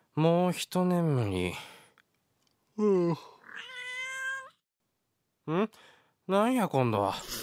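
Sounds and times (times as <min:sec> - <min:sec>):
speech: 0:00.2 - 0:01.8, 0:02.8 - 0:03.7, 0:05.5 - 0:07.4
cats yowling in a fight: 0:03.4 - 0:04.6.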